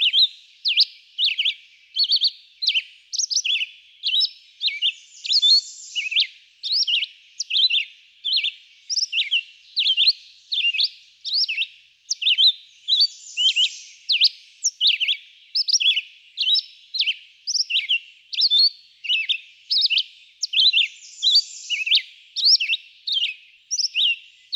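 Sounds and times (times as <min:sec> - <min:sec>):
red-eyed vireo singing short choppy whistled phrases: 0:00.0 - 0:24.5.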